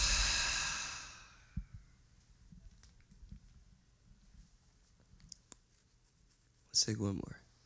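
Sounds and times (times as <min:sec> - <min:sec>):
deep breathy exhale during a guided breathing exercise: 0:00.0 - 0:01.8.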